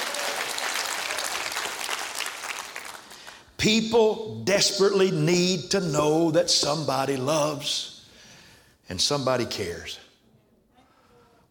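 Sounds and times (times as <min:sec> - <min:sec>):
congregation clapping in a room: 0:00.0 - 0:03.6
speech: 0:03.6 - 0:07.9, 0:08.9 - 0:10.0.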